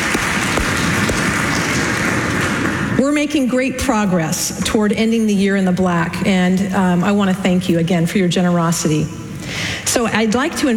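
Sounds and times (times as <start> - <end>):
congregation applauding at a service: 0.0 - 3.0
speech: 3.2 - 10.7.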